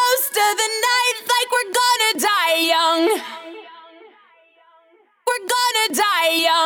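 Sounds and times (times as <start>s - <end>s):
person singing lead vocals: 0.0s - 4.2s, 5.3s - 6.6s.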